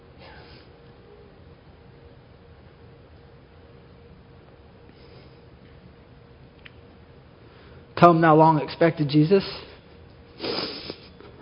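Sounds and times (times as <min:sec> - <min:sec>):
speech: 0:08.0 - 0:09.7
person sniffling: 0:10.4 - 0:11.2.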